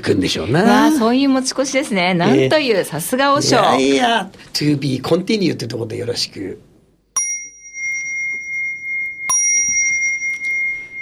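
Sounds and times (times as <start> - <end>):
speech: 0.0 - 6.7
bell ringing: 7.2 - 10.9.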